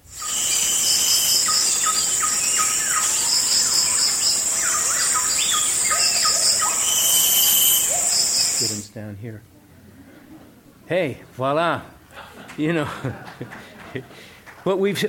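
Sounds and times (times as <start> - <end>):
cicadas buzzing in a natural forest chorus: 0.0 - 8.9
speech: 9.0 - 9.6, 10.9 - 12.0, 12.6 - 15.0
laughter: 12.1 - 15.0.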